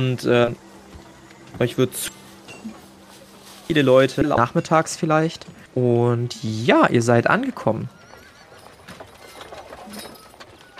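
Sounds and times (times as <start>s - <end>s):
speech: 0.0s - 0.6s, 1.5s - 2.8s, 3.7s - 8.0s
horse hooves clip-clopping: 7.5s - 10.7s.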